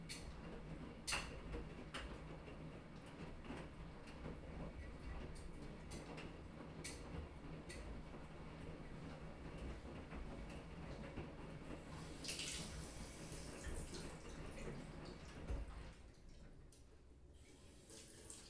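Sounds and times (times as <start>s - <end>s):
laundry room soundscape: 0.0s - 18.4s.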